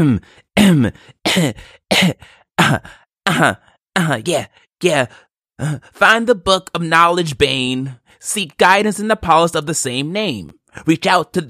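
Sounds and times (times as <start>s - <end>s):
person coughing rhythmically: 0.0s - 4.2s
speech: 0.0s - 11.4s.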